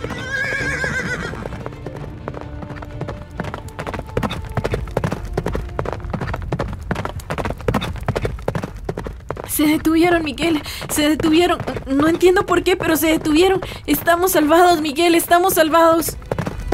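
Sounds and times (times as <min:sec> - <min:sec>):
horse whinny: 0:00.0 - 0:01.8
horse hooves clip-clopping: 0:00.0 - 0:16.7
speech: 0:09.6 - 0:16.1.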